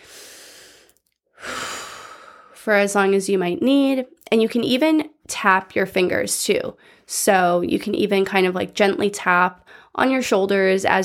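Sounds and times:
slow deep breathing during a butterfly-hug self-soothing exercise: 0.0s - 2.6s
speech: 2.6s - 11.0s.

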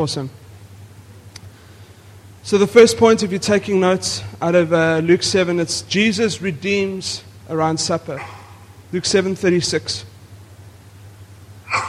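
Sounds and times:
speech: 0.0s - 0.4s, 2.4s - 10.1s
steady low electrical hum: 0.0s - 11.8s
audience member sneezing during a church sermon: 8.2s - 8.7s, 11.7s - 11.8s.

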